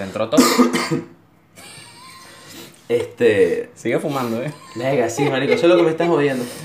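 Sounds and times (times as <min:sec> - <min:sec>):
speech: 0:00.0 - 0:01.7, 0:02.9 - 0:06.6
person coughing harshly: 0:00.4 - 0:01.2
laughter: 0:01.6 - 0:02.7, 0:04.2 - 0:06.6.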